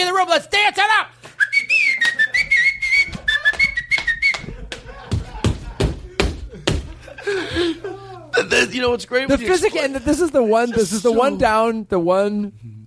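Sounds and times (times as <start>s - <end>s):
speech: 0.1s - 1.2s, 7.6s - 12.8s
person whistling a wavering high tune: 1.4s - 4.5s
laughter: 1.6s - 11.6s
loud rhythmic thumps or claps: 2.0s - 7.8s
sharp knocks: 4.4s - 7.0s.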